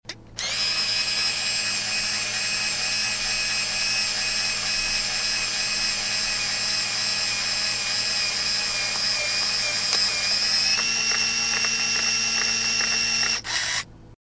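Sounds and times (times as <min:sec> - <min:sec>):
camera motor: 0:00.4 - 0:13.9.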